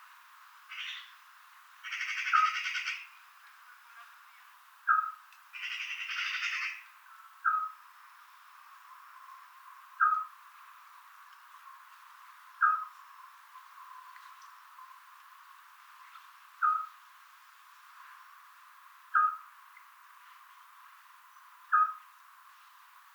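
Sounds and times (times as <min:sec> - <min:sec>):
magpie calls: 0:00.7 - 0:01.1, 0:01.8 - 0:03.1, 0:04.9 - 0:06.9, 0:12.6 - 0:12.9, 0:16.6 - 0:16.9, 0:19.1 - 0:19.5, 0:21.7 - 0:22.0
scops owl Otus scops call: 0:01.8 - 0:03.1, 0:04.9 - 0:06.9, 0:12.6 - 0:12.9, 0:19.1 - 0:19.5, 0:21.7 - 0:22.0.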